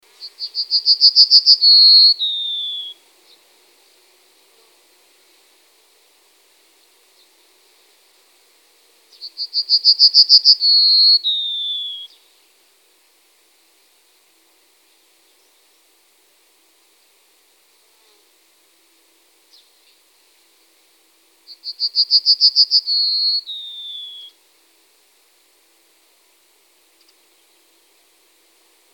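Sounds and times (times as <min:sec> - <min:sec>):
Emberiza citrinella call: 0:00.2 - 0:03.0, 0:09.2 - 0:12.2, 0:21.5 - 0:24.4.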